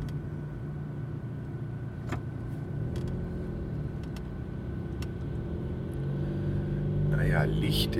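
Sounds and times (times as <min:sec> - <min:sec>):
car driving with engine and road rumble: 0:00.0 - 0:07.9
speech: 0:07.4 - 0:07.9.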